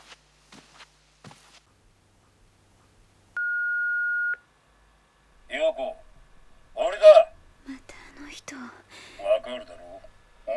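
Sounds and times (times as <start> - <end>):
soft footsteps and shuffles: 0.0 - 3.4
quiet hum: 0.0 - 10.5
answering machine message beep: 3.4 - 4.4.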